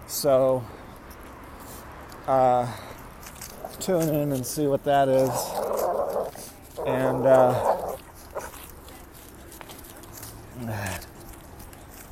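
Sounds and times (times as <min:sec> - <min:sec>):
speech: 0:00.1 - 0:00.8, 0:02.3 - 0:02.9, 0:03.8 - 0:05.6, 0:06.8 - 0:07.7
dog whimpering at another dog: 0:05.2 - 0:08.6.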